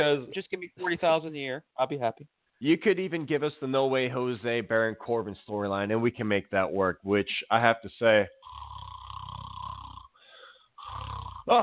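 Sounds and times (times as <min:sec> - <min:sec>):
speech: 0:00.0 - 0:08.8, 0:11.5 - 0:11.6
person imitating snoring: 0:08.4 - 0:11.6.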